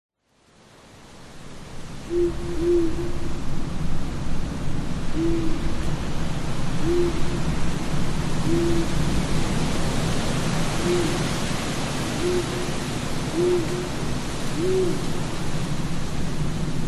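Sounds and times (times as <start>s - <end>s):
constant rushing wind: 0.6s - 16.8s
owl hooting: 2.1s - 3.3s, 5.1s - 5.8s, 6.8s - 7.6s, 8.4s - 9.0s, 10.7s - 15.4s
speech: 2.1s - 3.6s.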